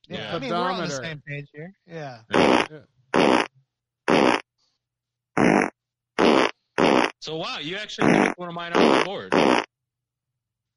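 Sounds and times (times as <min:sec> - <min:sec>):
speech: 0:00.1 - 0:03.4, 0:07.2 - 0:09.7
fart sounds, one per running step: 0:02.3 - 0:03.5, 0:04.1 - 0:04.5, 0:05.4 - 0:07.2, 0:07.9 - 0:09.7.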